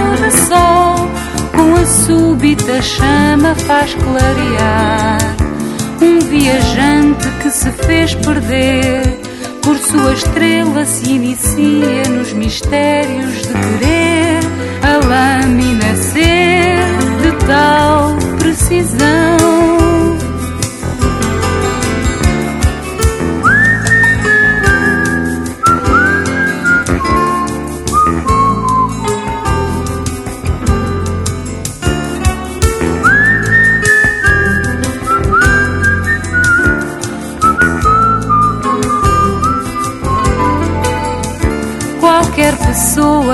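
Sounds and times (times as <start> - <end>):
full instrumental backing music: 0.0 - 43.3
speech: 2.1 - 14.4, 15.0 - 20.2
person whistling a melody with sliding notes: 23.4 - 30.2, 33.0 - 41.4.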